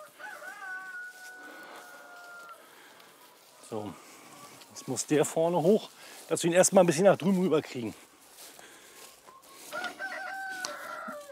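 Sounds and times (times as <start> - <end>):
rooster crowing at a mobile chicken coop: 0.0 - 4.6, 9.5 - 11.2
speech: 3.7 - 4.1, 4.8 - 8.1.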